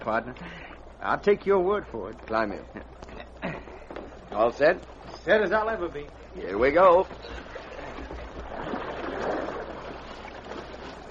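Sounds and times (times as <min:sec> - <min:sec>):
speech: 0:00.0 - 0:03.5, 0:04.4 - 0:07.4
canoe gliding through river water in a canyon: 0:03.8 - 0:11.0.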